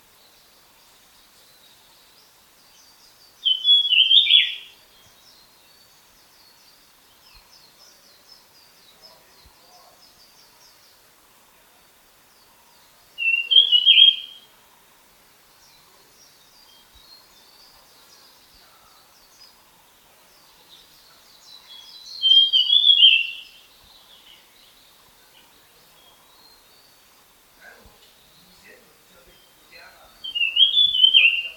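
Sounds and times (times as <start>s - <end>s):
dusky fulvetta calling: 3.4s - 4.8s, 13.2s - 14.5s, 21.7s - 23.7s, 27.6s - 31.5s.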